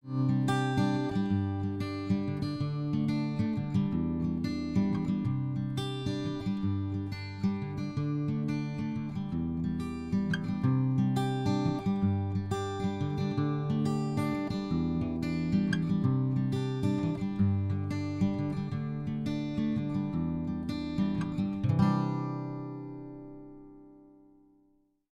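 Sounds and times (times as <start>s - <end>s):
picked guitar: 0.0s - 24.8s.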